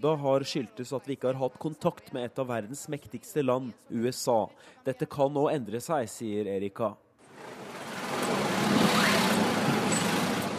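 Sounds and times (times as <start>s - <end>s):
speech: 0.0s - 7.6s
old 1950s American cars driving past in street traffic: 7.3s - 10.5s.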